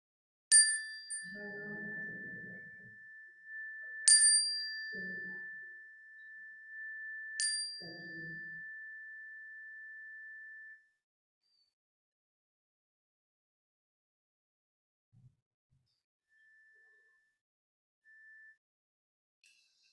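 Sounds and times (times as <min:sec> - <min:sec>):
bright chime struck during prayer service: 0:00.6 - 0:09.6.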